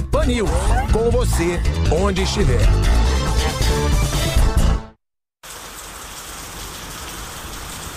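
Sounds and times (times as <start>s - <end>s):
music: 0.0s - 5.0s
speech: 0.2s - 3.1s
steady dense rainfall: 5.4s - 7.9s.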